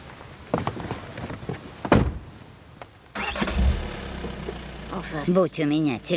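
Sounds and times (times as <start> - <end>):
Audi car engine starting and rumbling: 3.2 - 6.1
speech: 5.0 - 6.1.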